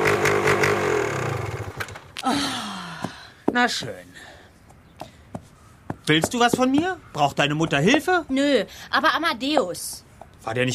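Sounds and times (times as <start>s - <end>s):
small motor running during a test and winding down: 0.0s - 2.0s
speech: 3.6s - 4.2s, 6.1s - 10.7s.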